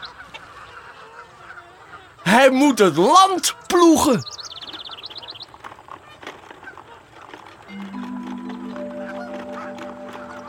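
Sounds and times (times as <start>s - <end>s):
chickens clucking: 0.0s - 3.7s, 6.6s - 10.4s
speech: 2.4s - 4.4s.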